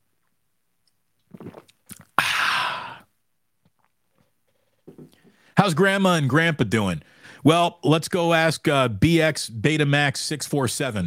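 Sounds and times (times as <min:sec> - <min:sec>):
person sipping a drink: 0:00.9 - 0:04.3
swallowing: 0:01.2 - 0:04.3
loud breathy hissing slurp or exhale: 0:01.3 - 0:03.1
speech: 0:05.6 - 0:11.0.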